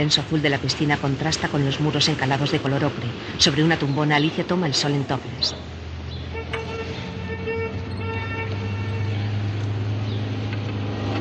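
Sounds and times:
speech: 0.0 - 5.7
continuous street noise: 0.0 - 11.1
steady low engine rumble: 0.0 - 11.1
taxi car horn honking: 6.2 - 9.6.

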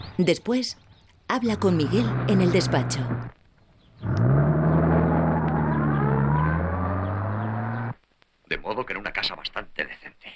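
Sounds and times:
speech: 0.2 - 3.4, 8.6 - 10.3
car engine starting and pulling away: 1.4 - 3.4, 4.0 - 8.0.

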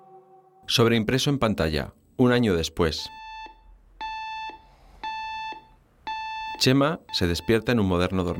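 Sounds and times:
speech: 0.7 - 3.2, 6.6 - 8.3
electronic alarm clock beeping at 7 in the morning in a modern bedroom: 3.1 - 8.3.

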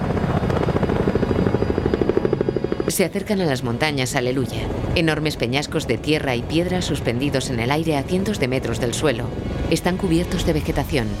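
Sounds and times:
helicopter rotor thrumming while climbing into fog: 0.0 - 11.1
speech: 3.0 - 11.1.

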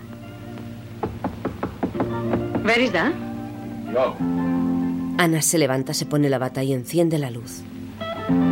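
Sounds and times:
knocking on a door: 1.0 - 3.1
speech: 2.7 - 3.3, 3.9 - 4.5, 5.2 - 8.4.

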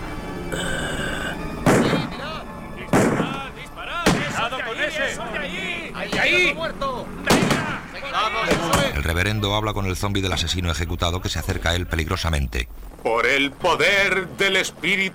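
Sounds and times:
gunshots as people shoot at zombies: 1.6 - 2.2, 2.9 - 4.6, 7.2 - 9.0
people shouting: 3.2 - 9.0
speech: 4.9 - 15.1.

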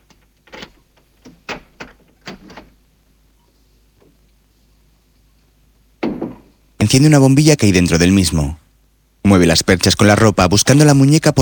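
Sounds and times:
clicks and knocks from the door latch and hinges: 0.0 - 2.8
wooden wardrobe door being opened: 0.0 - 2.8
speech: 6.9 - 8.6, 9.2 - 11.4.

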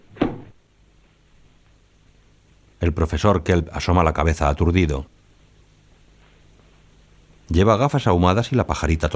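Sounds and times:
door pulled shut by its knob: 0.0 - 0.6
speech: 2.8 - 5.1, 7.5 - 9.1.

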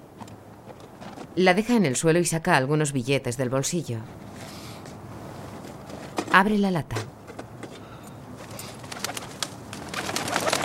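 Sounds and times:
speech: 1.4 - 4.2, 6.3 - 6.9
pigeons cooing at a building under construction: 8.4 - 10.6.

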